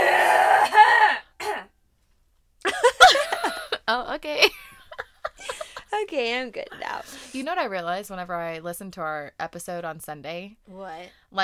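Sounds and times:
person clearing throat: 0.0 - 1.7
person coughing: 0.0 - 1.7, 2.7 - 3.8
laughter: 2.7 - 7.6
speech: 3.9 - 4.7, 5.9 - 11.4.

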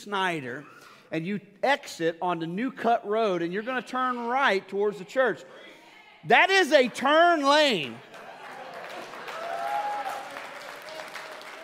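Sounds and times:
speech: 0.0 - 8.1
church audience clapping during a sermon: 6.7 - 11.6.

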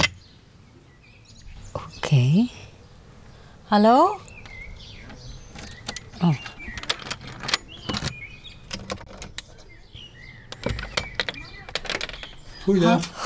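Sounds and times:
speech: 2.1 - 2.6, 3.7 - 4.3, 6.2 - 6.5, 12.7 - 13.2
keys turning in house door locks: 4.2 - 9.9, 10.5 - 12.7
scraping and clunks of house door locks: 4.2 - 13.2.

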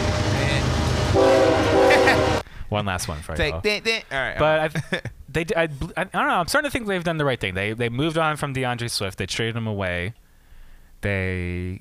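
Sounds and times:
very long train rumbling past: 0.0 - 2.4
speech: 2.7 - 10.2, 11.0 - 11.7.

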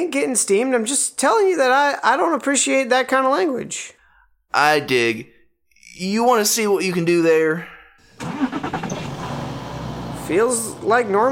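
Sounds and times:
speech: 0.0 - 5.3, 6.0 - 8.9, 10.3 - 11.3
truck engine cranking and starting: 8.0 - 11.3.

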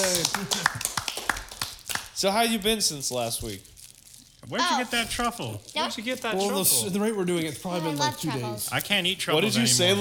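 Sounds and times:
small group clapping hands: 0.0 - 2.3
speech: 2.2 - 3.8, 4.5 - 9.9.

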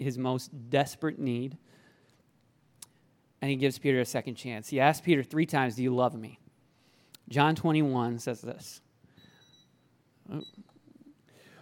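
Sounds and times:
speech: 0.0 - 1.8, 3.4 - 6.4, 7.3 - 8.8, 10.3 - 10.7
faint thin electronic beep from a stage timer: 9.2 - 10.8.

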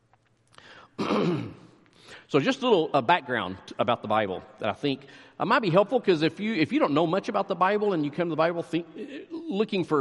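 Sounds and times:
raspy throat clearing by a person getting over a cold: 1.0 - 1.8
speech: 2.3 - 9.9.

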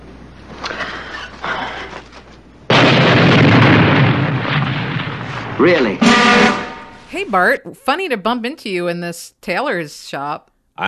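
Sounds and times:
low rumbling: 0.0 - 7.2
bomb hidden in a money clip exploding: 2.7 - 7.0
speech: 5.6 - 6.5, 7.1 - 10.8.

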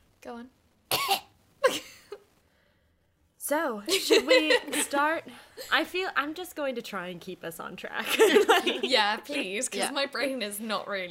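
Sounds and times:
speech: 0.2 - 1.2, 3.5 - 11.0
sharp coughs made to check recording levels: 0.9 - 1.9.

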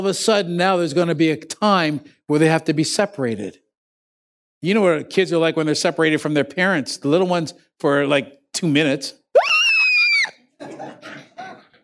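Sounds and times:
speech: 0.0 - 3.6, 4.6 - 9.5
shrill sustained scream meme sound effect: 9.4 - 10.5
laughter: 10.6 - 11.8.

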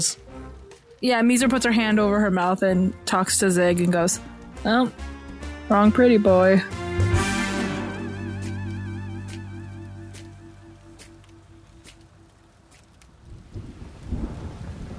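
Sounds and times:
speech: 0.0 - 0.4, 1.0 - 5.1, 5.7 - 7.1
steady heavy rain: 0.0 - 2.2, 6.7 - 14.9
loud thunder crack and rumbling: 13.2 - 14.9.

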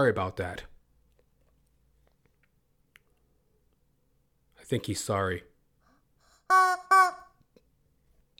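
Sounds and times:
speech: 0.0 - 0.7, 4.7 - 5.5, 6.5 - 7.2
loud harsh chicken squawks: 6.5 - 7.4.

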